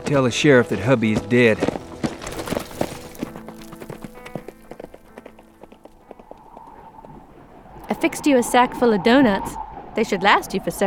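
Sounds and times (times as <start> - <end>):
horse hooves clip-clopping as rider departs: 0.0 - 7.9
speech: 0.1 - 1.8, 8.0 - 10.8.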